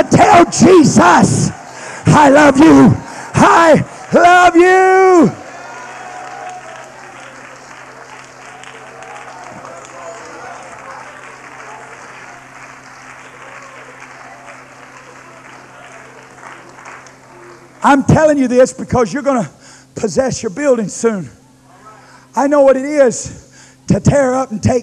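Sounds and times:
speech: 0:00.0 - 0:05.4, 0:17.8 - 0:21.4, 0:22.3 - 0:24.8
crowd clapping: 0:00.0 - 0:18.1
low constant hum: 0:00.0 - 0:24.8.

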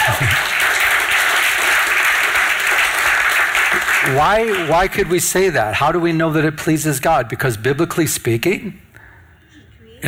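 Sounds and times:
large crowd applauding in a roomy indoor space: 0:00.0 - 0:07.3
speech: 0:00.2 - 0:00.5, 0:04.1 - 0:08.8.

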